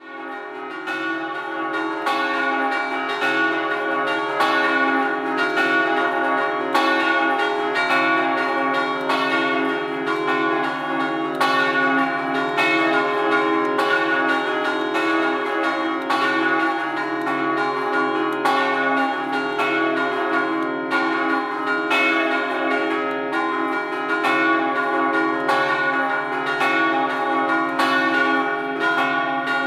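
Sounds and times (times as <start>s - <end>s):
church bells in Osoppo: 0.0s - 29.6s.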